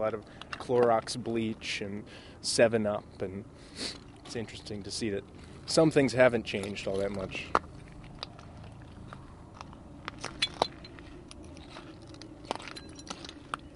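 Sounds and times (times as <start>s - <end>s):
speech: 0.0s - 7.6s
steady low outdoor rumble: 0.0s - 13.7s
glass shards shifted by hand clinking at Dead Horse Bay: 10.2s - 11.0s, 12.5s - 13.5s.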